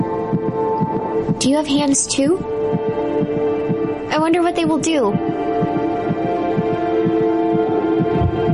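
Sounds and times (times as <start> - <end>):
rapid heartbeat of an unborn baby in the womb: 0.0 - 8.5
speech: 1.4 - 2.8, 4.1 - 5.3.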